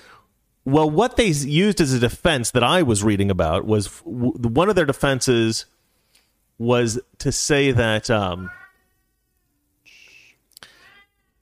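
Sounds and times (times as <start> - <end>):
speech: 0.7 - 5.8, 6.6 - 8.6
cat meowing: 8.4 - 11.3.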